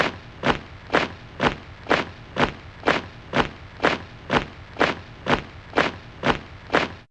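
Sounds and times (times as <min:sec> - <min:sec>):
marching footsteps on a sampling synthesizer: 0:00.0 - 0:07.0.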